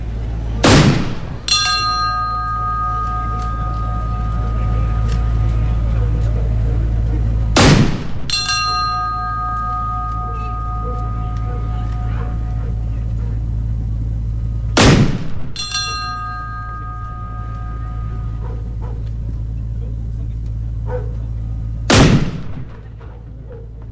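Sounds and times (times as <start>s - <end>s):
cannon salvos from a 21-gun salute honouring a corvette: 0.0s - 19.3s, 21.6s - 23.0s
steady low hum: 0.0s - 23.9s
ringing bell-like tones: 1.4s - 14.8s, 15.5s - 20.8s.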